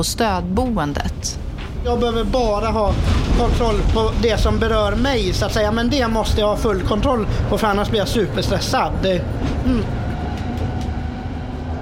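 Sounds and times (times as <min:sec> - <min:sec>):
speech: 0:00.0 - 0:10.0
tram rolling along its rails: 0:00.0 - 0:11.8.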